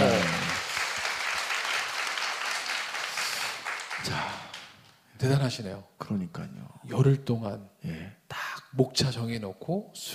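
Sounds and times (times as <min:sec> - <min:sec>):
studio audience applause: 0:00.0 - 0:05.0
speech: 0:05.2 - 0:10.1.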